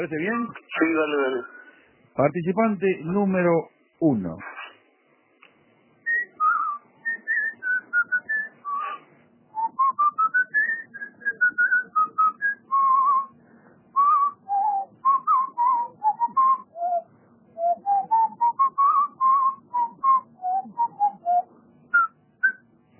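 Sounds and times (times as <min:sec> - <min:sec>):
speech: 0:00.0 - 0:01.6, 0:02.2 - 0:04.6
person whistling a lively tune: 0:06.1 - 0:09.0, 0:09.6 - 0:13.3, 0:14.0 - 0:17.0, 0:17.6 - 0:21.4.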